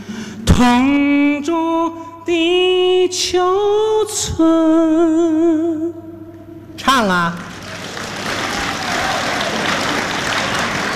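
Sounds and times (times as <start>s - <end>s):
speech: 0.6s - 6.1s, 6.8s - 7.5s
audience applause at a stage comedy show: 7.5s - 10.9s.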